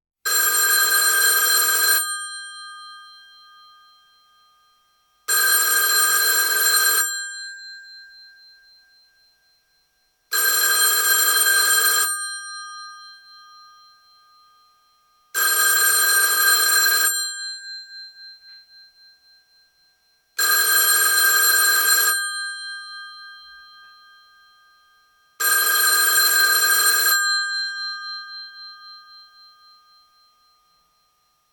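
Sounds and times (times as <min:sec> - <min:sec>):
telephone: 0:00.3 - 0:03.5, 0:05.3 - 0:08.0, 0:10.3 - 0:12.9, 0:15.4 - 0:17.8, 0:20.4 - 0:23.9, 0:25.4 - 0:29.8.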